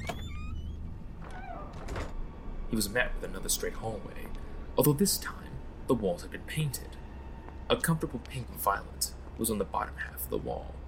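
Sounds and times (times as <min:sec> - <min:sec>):
mechanical exit doors sliding open: 0:00.0 - 0:02.4
speech: 0:02.7 - 0:07.0, 0:07.7 - 0:10.8.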